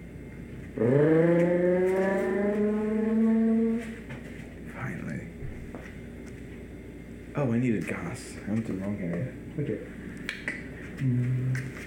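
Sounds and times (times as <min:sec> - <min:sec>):
speech: 0:00.8 - 0:01.5, 0:07.4 - 0:11.4
car engine revving: 0:00.8 - 0:04.0.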